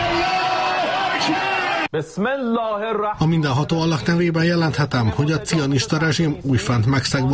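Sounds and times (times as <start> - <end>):
rising yells: 0.0 - 1.9
dense crowd shouting and cheering in the streets at night: 0.0 - 2.0
speech: 1.3 - 7.3.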